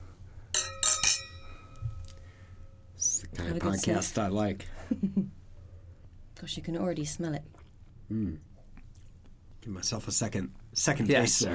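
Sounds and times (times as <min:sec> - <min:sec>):
wine glasses clinking in a toast at a wine tasting: 0:00.6 - 0:02.3
speech: 0:03.5 - 0:05.4, 0:06.4 - 0:08.5, 0:09.6 - 0:11.5.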